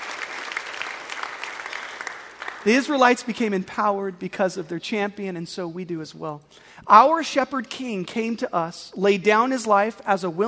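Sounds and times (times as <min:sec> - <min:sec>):
audience applause during a sermon: 0:00.0 - 0:02.7
speech: 0:02.6 - 0:10.4.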